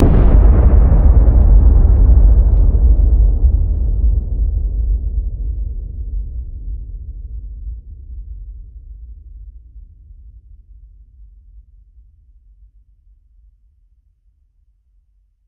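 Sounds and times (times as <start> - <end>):
massive explosion: 0.0 - 5.6.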